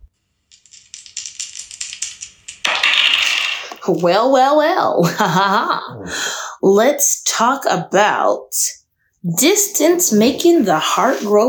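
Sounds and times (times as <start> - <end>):
dice rattling: 0.5 - 4.0
speech: 3.9 - 11.4.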